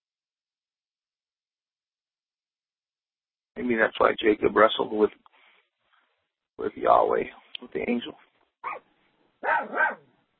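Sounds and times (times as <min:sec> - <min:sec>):
speech: 0:03.6 - 0:05.3, 0:06.6 - 0:10.1
dog barking in short yappy bursts: 0:08.6 - 0:10.1.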